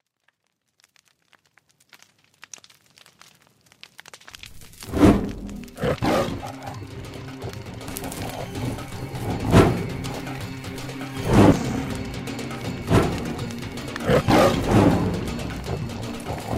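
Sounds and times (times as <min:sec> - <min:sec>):
low continuous growling: 0:04.8 - 0:16.5
tiger roaring: 0:04.9 - 0:10.5, 0:11.2 - 0:12.0, 0:12.8 - 0:16.5.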